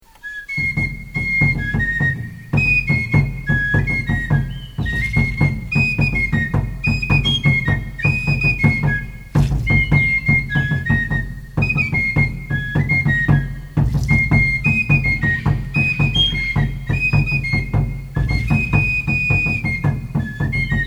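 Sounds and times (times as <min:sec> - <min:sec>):
Maya son cruzado music: 0:00.0 - 0:20.8.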